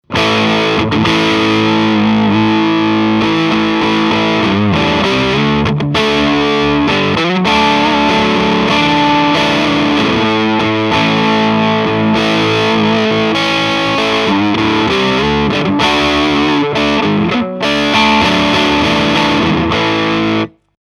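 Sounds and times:
AOR crunch guitar: 0.0 - 20.7.

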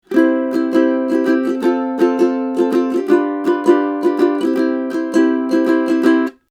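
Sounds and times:
ukulele recorded with Neumann M49c cardioid microphone at 15th fret: 0.0 - 6.5.

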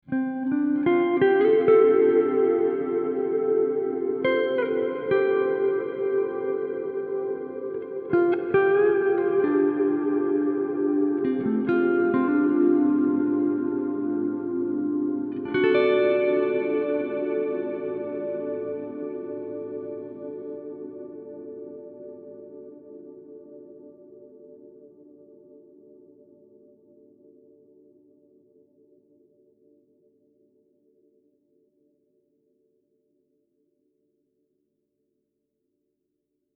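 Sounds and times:
bright guitar: 0.0 - 25.6.

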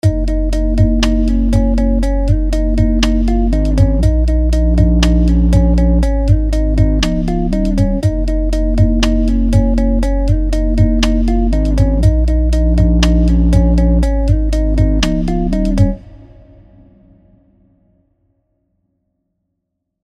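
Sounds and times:
pumping bassline beat: 0.0 - 16.0.

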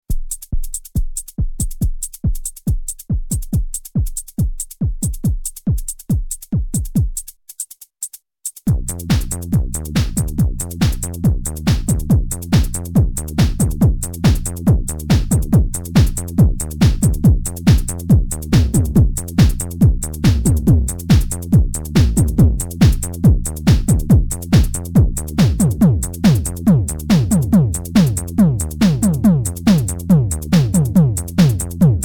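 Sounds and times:
dance kick drum: 0.1 - 7.2, 8.7 - 32.0.

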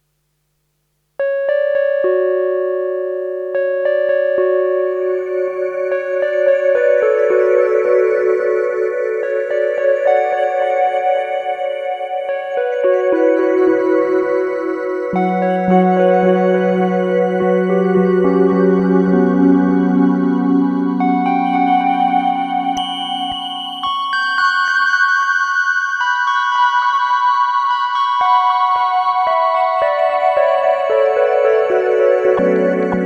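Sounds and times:
synthesizer: 1.2 - 33.0.

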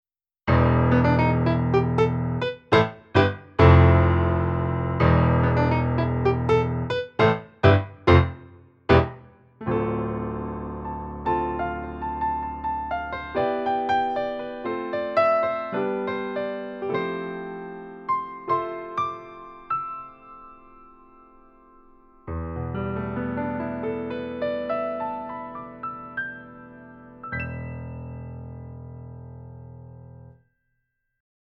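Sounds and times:
pop grand piano: 0.5 - 30.4.

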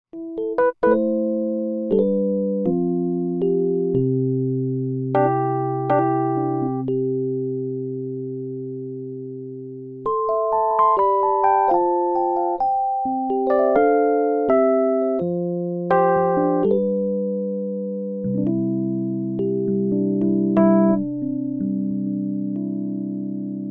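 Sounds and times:
Rhodes Mark V electric piano: 0.1 - 23.6.

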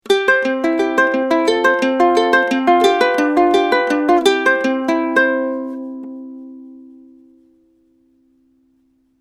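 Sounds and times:
ukulele recorded with a U87 microphone: 0.0 - 9.1.

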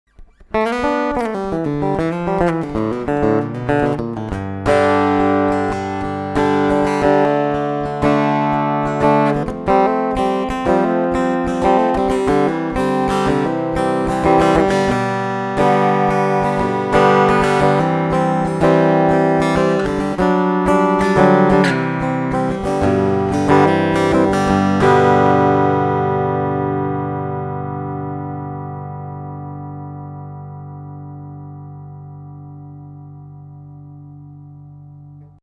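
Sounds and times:
ESP LTD TL 6 guitar picking with midboost: 0.1 - 35.4.

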